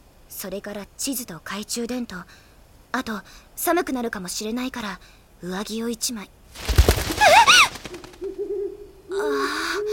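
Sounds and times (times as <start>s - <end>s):
speech: 0.4s - 7.0s
heavy rustling owl wingbeats: 6.6s - 8.4s
large owl hooting: 7.1s - 9.9s.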